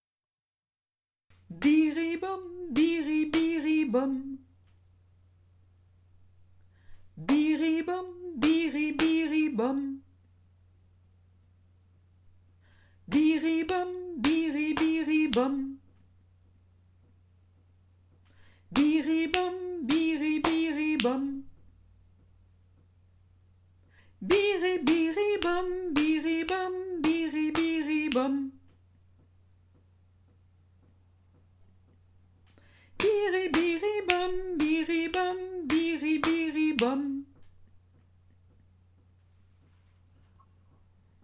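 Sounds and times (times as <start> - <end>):
person singing: 1.5 - 4.4, 7.2 - 10.1, 13.1 - 15.8, 18.7 - 21.5, 24.2 - 28.6, 33.0 - 37.3
rhythm clapping: 2.8 - 3.8, 7.3 - 7.6, 8.4 - 9.4, 13.1 - 15.6, 18.7 - 21.3, 24.3 - 28.4, 33.0 - 39.1.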